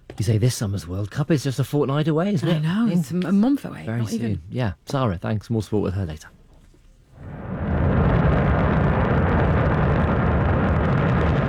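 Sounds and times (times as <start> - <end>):
speech: 0.2 - 6.4
Shenzhou 23 rocket blasting off from a launch center in Inner Mongolia: 7.2 - 11.4.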